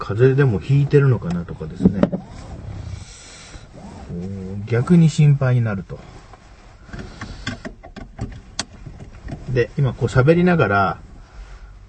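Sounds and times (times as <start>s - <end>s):
speech: 0.1s - 2.7s, 4.1s - 6.2s, 9.5s - 11.0s
steady low rumble inside a car: 0.6s - 4.8s.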